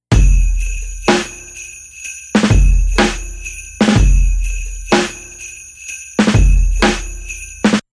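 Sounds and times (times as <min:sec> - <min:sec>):
low drum loop with sleigh bells: 0:00.0 - 0:07.9.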